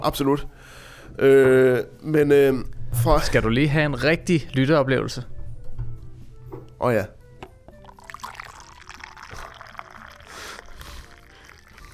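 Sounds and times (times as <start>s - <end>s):
speech: 0.0s - 5.3s, 6.8s - 7.2s
Corona beer pouring into a glass: 7.7s - 11.9s.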